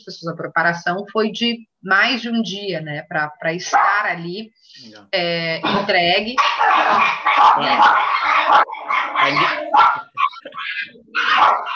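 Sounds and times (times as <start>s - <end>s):
speech: 0.0s - 11.7s
dog barking: 3.7s - 4.0s, 6.4s - 11.7s.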